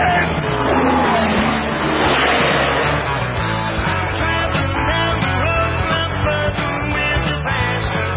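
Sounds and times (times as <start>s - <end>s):
tire squeal of race cars spinning: 0.0s - 3.9s
race car engines roaring at the Daytona 500: 0.0s - 6.6s
crowd noise: 0.0s - 8.1s.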